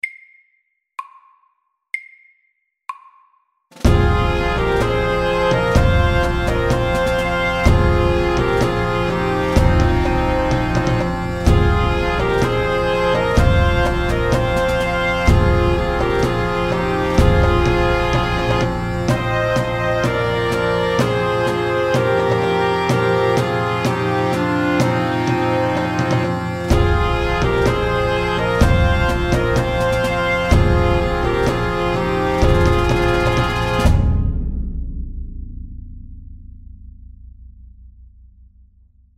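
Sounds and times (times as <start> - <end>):
pipes and drums playing fast at 126: 3.8 - 34.2.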